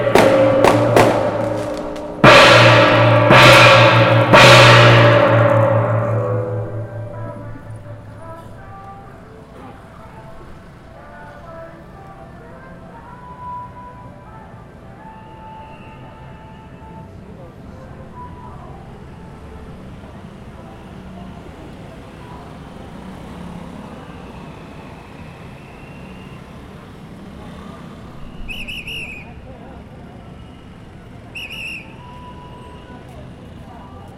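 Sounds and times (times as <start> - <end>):
gongs and cymbals clashing at a temple festival in Taipei: 0.0 - 8.8
low steady street hum: 0.0 - 34.1
faint voices: 6.7 - 34.1.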